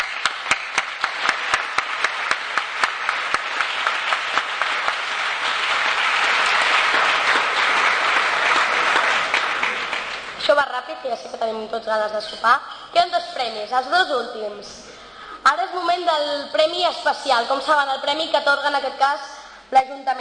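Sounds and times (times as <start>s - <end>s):
audience applause: 0.0s - 10.4s
speech: 11.4s - 20.1s.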